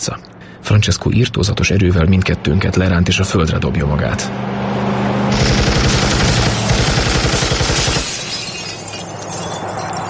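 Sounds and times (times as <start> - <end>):
speech: 0.0 - 4.8
roaring car engine rumble: 1.3 - 8.2
machine gun fire from a car speeding along a harbor street at night: 5.4 - 8.1.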